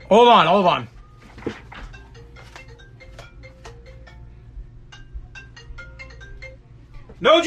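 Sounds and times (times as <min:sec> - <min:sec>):
faint low hum: 0:00.0 - 0:07.4
mobile phone ringtone playing a bright repeating melody: 0:01.2 - 0:07.0.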